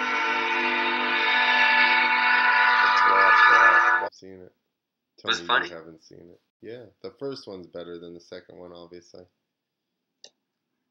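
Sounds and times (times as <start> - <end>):
train whistle blowing a steady chord: 0.0 - 4.1
speech: 4.2 - 4.6, 5.2 - 9.4.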